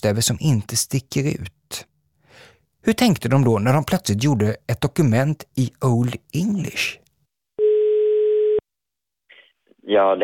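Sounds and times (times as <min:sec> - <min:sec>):
speech: 0:00.0 - 0:01.9, 0:02.8 - 0:07.0, 0:09.9 - 0:10.2
telephone ringback tone while calling a press secretary: 0:07.6 - 0:08.6.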